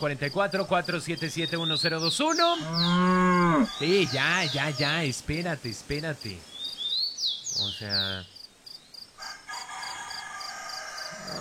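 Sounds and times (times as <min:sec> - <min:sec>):
speech: 0:00.0 - 0:06.5, 0:07.6 - 0:08.3
rooster crowing: 0:02.8 - 0:04.9, 0:09.2 - 0:11.4.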